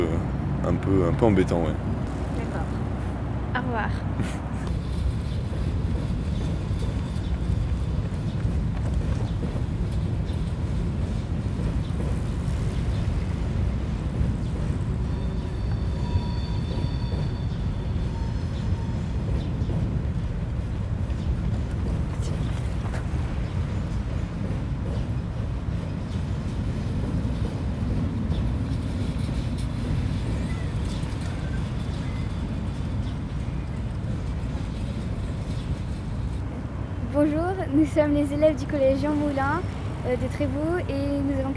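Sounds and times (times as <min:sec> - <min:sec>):
steady rumble of heavy car traffic from a motorway: 0:00.0 - 0:41.5
speech: 0:00.6 - 0:01.9, 0:03.6 - 0:04.6, 0:37.8 - 0:41.5.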